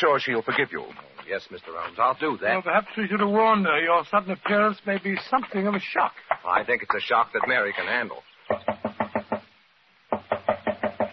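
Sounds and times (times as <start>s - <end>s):
speech: 0.0s - 8.7s
firm knocking on a wooden door: 8.5s - 11.1s.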